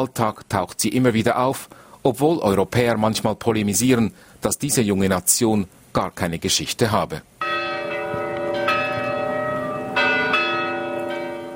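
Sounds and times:
speech: 0.0 - 7.4
large bells in the university bell tower chiming: 7.4 - 11.5.

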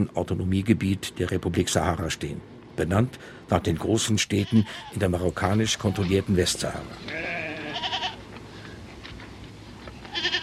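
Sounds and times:
speech: 0.0 - 7.9
constant low rumble of wind in gravel desert: 0.0 - 10.4
goats bleating in desert enclosures in southern Algeria: 4.3 - 5.0, 6.9 - 8.3, 10.0 - 10.4.

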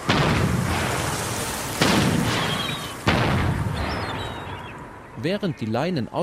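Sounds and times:
boat-mounted acoustic bird-scaring cannon blasts: 0.0 - 4.7
steady noise: 0.0 - 6.2
speech: 5.2 - 6.2.

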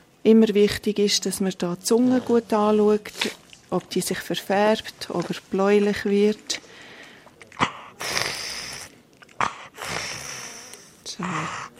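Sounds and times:
speech: 0.2 - 6.6
animal breathing heavily with raspy breaths: 7.6 - 11.7.

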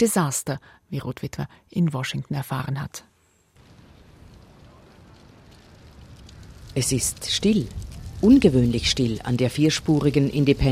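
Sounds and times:
speech: 0.0 - 3.1, 6.8 - 10.7
dry leaves skittering across pavement: 3.6 - 10.7
wind blowing steadily outdoors: 3.6 - 10.7.

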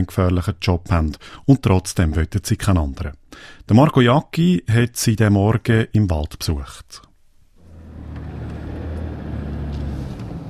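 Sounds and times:
speech: 0.0 - 7.1
car engine rumbling on a forest track into a logging area: 7.5 - 10.4.

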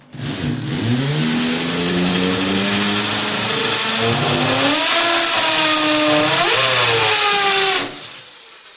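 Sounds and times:
loud electric drill whirring as an electrician drills, dowels and screws: 0.0 - 8.7.

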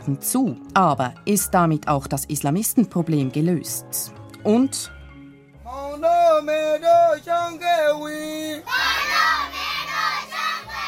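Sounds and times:
speech: 0.0 - 5.0, 5.7 - 9.3
children chanting together at a school in a refugee camp: 8.6 - 10.8.

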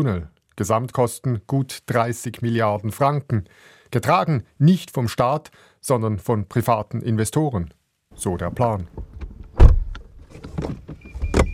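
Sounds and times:
speech: 0.0 - 9.1
electric car door thumps: 8.9 - 11.5.

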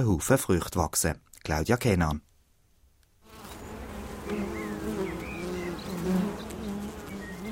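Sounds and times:
speech: 0.0 - 2.3
many honeybees buzzing around a beehive: 3.2 - 7.5.

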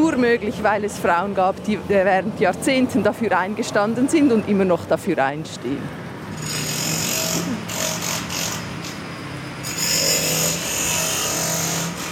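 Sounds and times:
speech: 0.2 - 6.0
jackhammer pounding at construction site: 6.3 - 9.0, 9.6 - 12.1
grinding construction machinery: 6.3 - 12.1.

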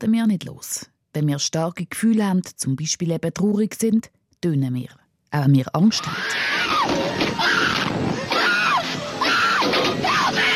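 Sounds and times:
speech: 0.0 - 8.4
people screaming on a roller coaster: 5.9 - 10.5
rumbling roller coaster ride noise: 5.9 - 10.5.

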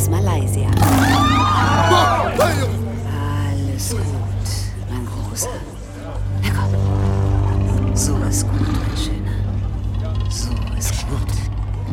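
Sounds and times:
speech: 0.1 - 1.1, 8.0 - 9.3, 10.3 - 11.9
tiger purring in a deep continuous rumble: 2.4 - 11.9.

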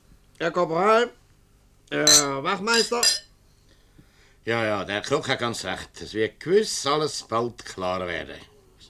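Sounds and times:
speech: 0.4 - 1.2, 1.9 - 3.3, 4.4 - 8.5
glasses clinking in a toast: 2.1 - 3.3.

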